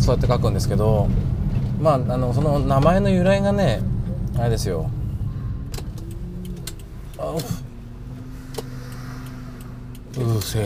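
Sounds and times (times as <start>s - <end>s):
speech: 0.0s - 5.0s, 7.2s - 7.6s, 10.2s - 10.6s
car driving on the road: 0.0s - 10.6s
faint ticks: 5.7s - 10.6s.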